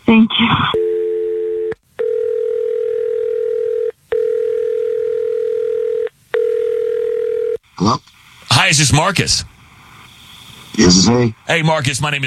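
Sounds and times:
phone line dial tone: 0:00.7 - 0:07.6
speech: 0:08.7 - 0:09.5, 0:10.8 - 0:12.2.

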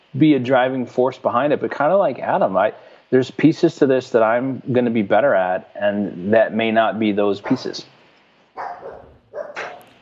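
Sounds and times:
low hum: 0:00.0 - 0:09.9
speech: 0:00.1 - 0:08.0
dog barking in a studio: 0:07.4 - 0:07.9, 0:08.6 - 0:09.9.

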